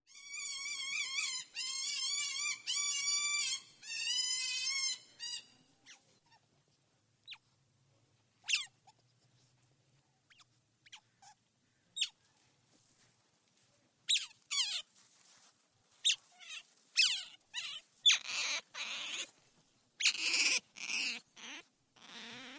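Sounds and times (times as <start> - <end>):
Asian otter cries and peeps: 0.1 - 6.4, 8.4 - 8.8, 10.3 - 11.4, 12.0 - 12.2, 14.1 - 14.9, 16.0 - 19.3, 20.0 - 22.5.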